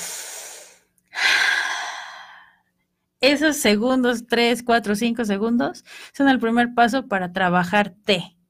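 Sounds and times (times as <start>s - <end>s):
slow deep breath: 0.0s - 2.7s
speech: 3.2s - 8.4s.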